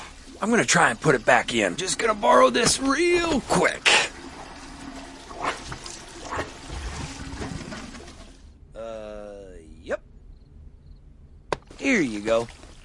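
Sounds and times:
water pouring and trickling in a home: 0.0 - 8.6, 11.7 - 12.8
speech: 0.4 - 4.0, 12.0 - 12.6.

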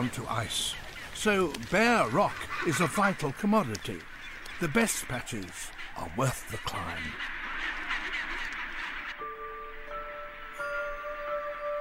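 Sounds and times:
speech: 0.0 - 7.8
colony of nesting penguins calling on rocky cliff tops: 0.0 - 11.7.

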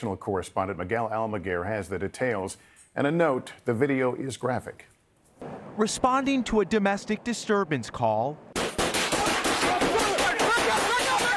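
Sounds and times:
speech: 0.0 - 8.4
volley of gunfire on police body camera footage: 8.6 - 11.3.

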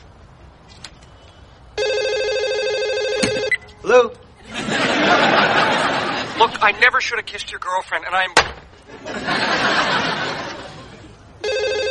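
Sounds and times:
telephone ringing with electronic trill: 1.8 - 3.8, 11.4 - 11.8
speech: 3.9 - 4.2, 6.4 - 9.8
laughter: 4.4 - 6.8, 8.8 - 11.2.

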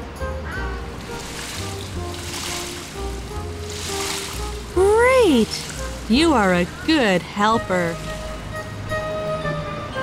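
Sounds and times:
water pouring onto potted plants: 0.8 - 9.0
speech: 5.3 - 8.1.

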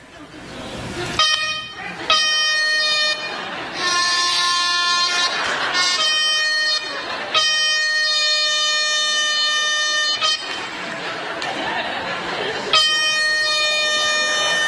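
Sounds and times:
laughter: 0.2 - 14.6
air horn blasts from a phone app: 1.2 - 10.7, 12.7 - 14.6.

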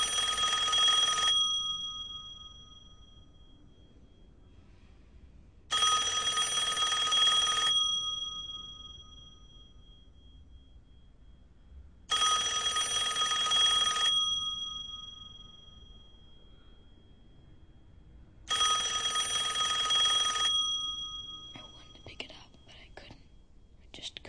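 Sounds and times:
telephone bell ringing: 0.0 - 4.6, 5.7 - 11.1, 12.1 - 17.5, 18.5 - 22.0.

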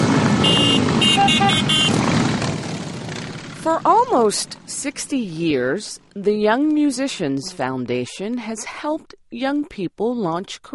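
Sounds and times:
many motorcycles rolling past in a parade: 0.0 - 8.1
short horn toots: 0.4 - 2.1
speech: 3.8 - 10.7.

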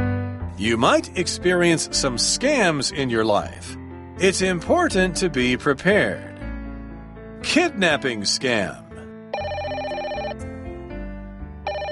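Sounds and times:
speech: 0.6 - 6.3, 7.4 - 8.8
telephone with bright electronic trilling ring: 9.3 - 10.4, 11.6 - 11.9.

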